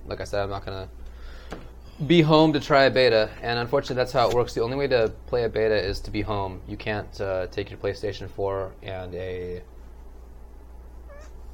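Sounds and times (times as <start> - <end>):
steady low hum: 0.0 - 11.5
speech: 0.1 - 9.7
cat meowing: 11.1 - 11.5.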